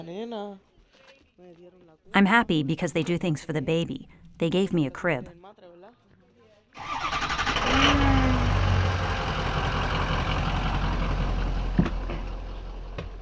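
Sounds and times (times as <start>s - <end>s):
speech: 0.0s - 0.7s, 1.4s - 6.0s, 6.8s - 8.3s
large old school bus engine starting and idling: 6.8s - 13.2s.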